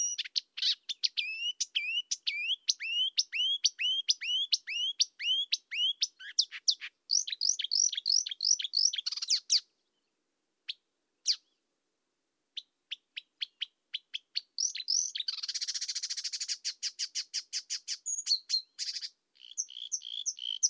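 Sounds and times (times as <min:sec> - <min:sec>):
marsh warbler Acrocephalus palustris palustris singing: 0:00.0 - 0:09.6, 0:14.5 - 0:16.6, 0:18.0 - 0:20.6.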